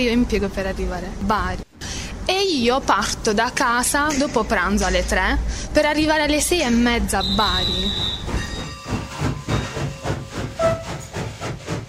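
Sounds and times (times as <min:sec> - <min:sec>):
speech: 0:00.0 - 0:01.7, 0:02.3 - 0:08.4
train chugging departing from a station: 0:07.1 - 0:11.8
faint whistle-like tone: 0:07.2 - 0:08.7
train steam hissing: 0:07.6 - 0:11.8.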